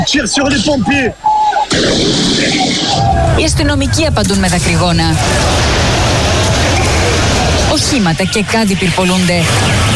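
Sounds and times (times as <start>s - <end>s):
speech: 0.0s - 6.0s, 7.7s - 9.9s
loud firework blast during street riot: 1.7s - 8.1s
sustained crackling roar of fireworks and flares: 1.7s - 8.2s
voices shouting during street riot: 2.4s - 3.7s, 4.8s - 7.8s.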